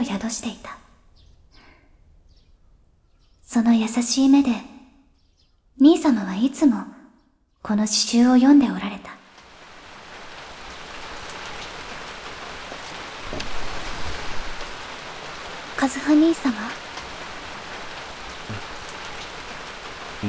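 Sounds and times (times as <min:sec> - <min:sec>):
speech: 0:00.0 - 0:00.8, 0:03.5 - 0:04.7, 0:05.8 - 0:07.0, 0:07.6 - 0:09.2, 0:15.8 - 0:16.8
steady rain pattering on surfaces: 0:08.1 - 0:20.2
soft thump: 0:13.2 - 0:14.2.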